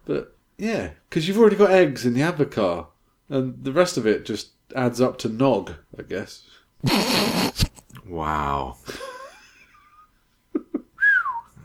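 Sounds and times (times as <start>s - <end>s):
speech: 0.0s - 9.0s
person whistling close to the microphone: 11.0s - 11.6s.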